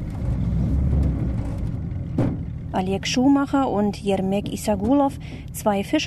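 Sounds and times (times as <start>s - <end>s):
fishermen's motorboat engine rumbling on Lake Balkhash in eastern Kazakhstan: 0.0s - 6.0s
speech: 2.8s - 6.0s.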